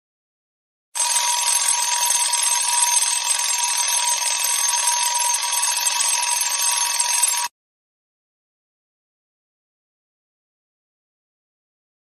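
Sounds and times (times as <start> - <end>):
desktop alarm clock: 1.0 - 7.5.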